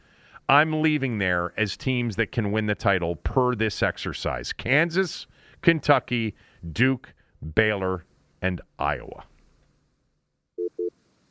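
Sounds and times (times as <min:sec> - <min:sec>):
faint hiss: 0:00.0 - 0:11.2
speech: 0:00.5 - 0:09.3
electronic phone beeps: 0:10.6 - 0:10.9.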